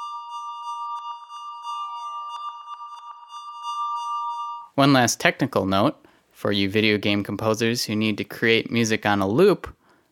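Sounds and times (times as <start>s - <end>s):
808 cowbell softened with reverb and delay: 0.0s - 4.8s
speech: 4.8s - 9.8s.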